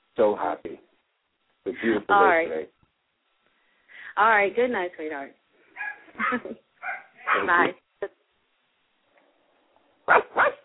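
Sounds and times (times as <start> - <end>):
speech: 0.2 - 0.9, 1.6 - 2.8, 4.2 - 5.4, 6.2 - 6.6, 7.3 - 8.2, 10.1 - 10.6
small dogs barking in high-pitched yappy bursts: 5.8 - 7.8, 10.1 - 10.6.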